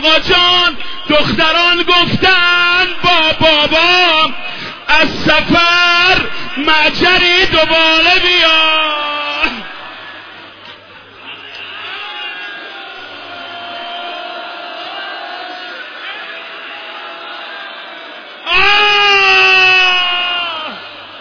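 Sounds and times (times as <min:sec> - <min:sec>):
speech: 0:00.0 - 0:09.0
several people weeping and sobbing in wavering wails: 0:09.0 - 0:21.1.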